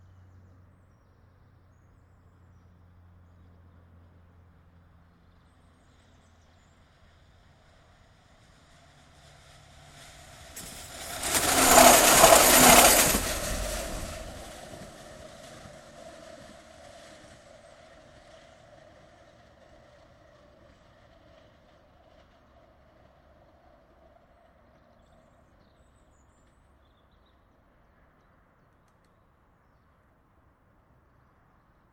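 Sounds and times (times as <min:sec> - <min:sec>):
steady mid-pitched whine from the rails: 0:06.8 - 0:24.7
tram passing on a bridge: 0:07.7 - 0:24.6.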